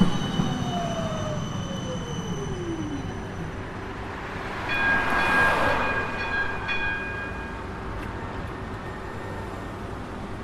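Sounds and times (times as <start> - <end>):
thin high metallic whine from tram wheels: 0.0 - 7.7
tram rolling along rails with low rumble: 0.0 - 10.4.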